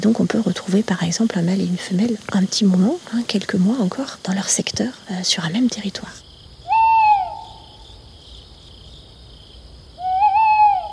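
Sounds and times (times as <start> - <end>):
speech: 0.0 - 6.2
tawny owl hooting: 6.6 - 7.9, 10.0 - 10.9.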